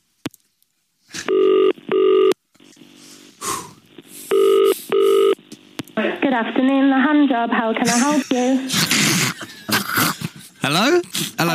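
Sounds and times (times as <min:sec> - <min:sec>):
telephone ringback tone as a call is put through to a business: 0:01.3 - 0:02.3, 0:04.3 - 0:05.4
speech: 0:06.3 - 0:09.5, 0:10.6 - 0:11.5.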